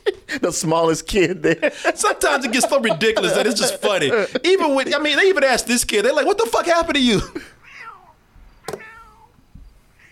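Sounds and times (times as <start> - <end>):
laughter: 0.0 - 7.5
speech: 0.4 - 7.5
cat meowing: 7.6 - 9.3.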